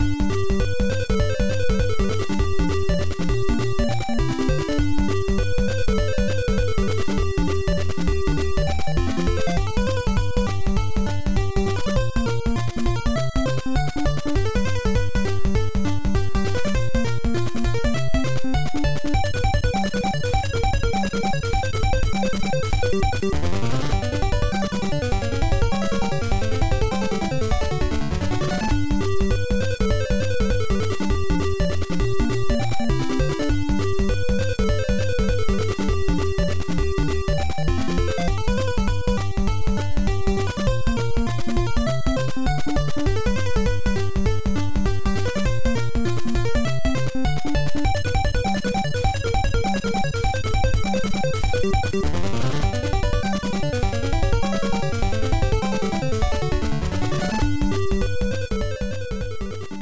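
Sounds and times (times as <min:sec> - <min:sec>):
shooting game stage background music: 0:00.0 - 0:59.7.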